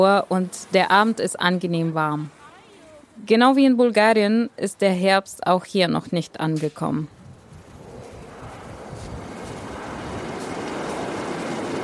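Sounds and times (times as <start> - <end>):
speech: 0.0 - 2.4, 3.2 - 7.2
subway train rumbling in motion: 7.2 - 11.8.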